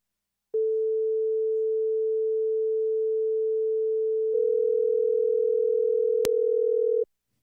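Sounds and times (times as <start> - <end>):
telephone ringing tone from 440 and 480 Hz sine waves: 0.6 - 7.1.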